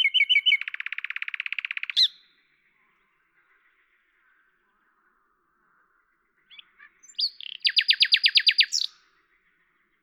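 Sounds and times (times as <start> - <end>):
common nightingale singing in Lavours France: 0.0 - 2.4, 6.5 - 9.0.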